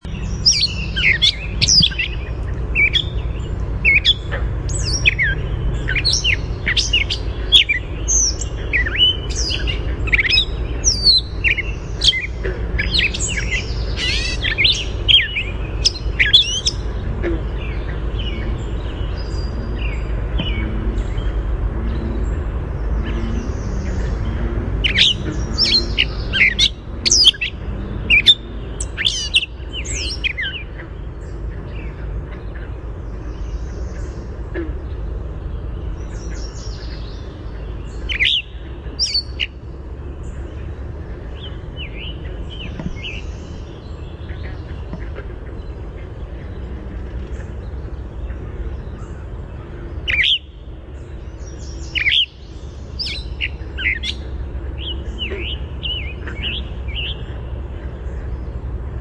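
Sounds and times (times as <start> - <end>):
GRCA song: 0.0 - 58.9.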